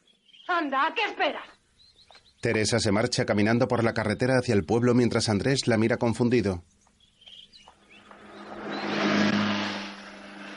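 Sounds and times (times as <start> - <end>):
speech: 0.5 - 1.6, 2.4 - 6.8
motorcycle engine starting and revving: 7.9 - 10.5.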